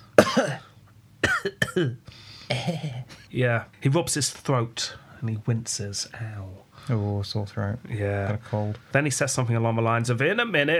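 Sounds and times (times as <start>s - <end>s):
harsh coughs: 0.2s - 3.3s
speech: 0.4s - 0.7s, 1.4s - 10.7s.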